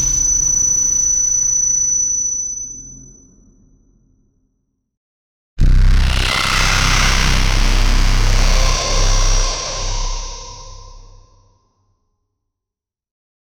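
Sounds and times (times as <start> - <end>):
horror movie sound effect: 5.6 - 11.5.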